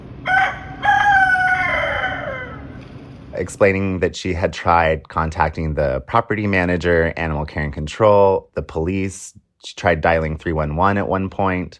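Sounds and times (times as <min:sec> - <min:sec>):
rooster crowing in a posted video: 0:00.2 - 0:02.8
speech: 0:03.4 - 0:11.7.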